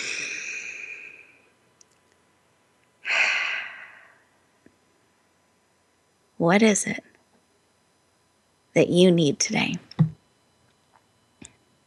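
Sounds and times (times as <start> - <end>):
person breathing deeply during guided eyes-closed relaxation: 0.0 - 1.5, 3.0 - 4.4
speech: 6.4 - 7.1, 8.8 - 9.9.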